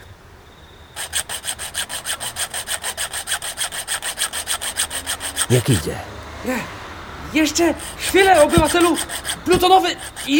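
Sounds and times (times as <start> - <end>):
hand saw cutting with rapid back-and-forth strokes: 1.0 - 5.8, 7.3 - 10.3
speech: 5.5 - 10.3.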